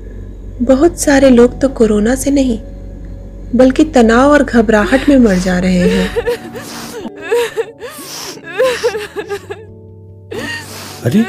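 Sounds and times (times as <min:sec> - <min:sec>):
speech: 0:00.6 - 0:02.7, 0:03.5 - 0:07.6, 0:08.6 - 0:09.6, 0:10.3 - 0:11.2
person crying: 0:04.6 - 0:09.7, 0:10.3 - 0:11.2.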